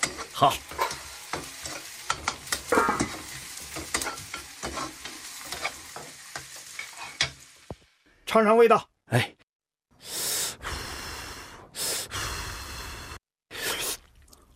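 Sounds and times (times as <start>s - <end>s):
food stir-frying in a pan: 0.0s - 8.0s
speech: 0.4s - 0.7s, 8.3s - 9.4s.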